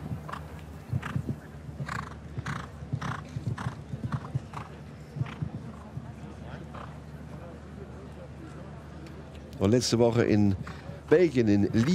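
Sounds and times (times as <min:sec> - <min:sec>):
horse's hooves clip-clopping: 0:00.0 - 0:06.9
speech: 0:09.6 - 0:11.9.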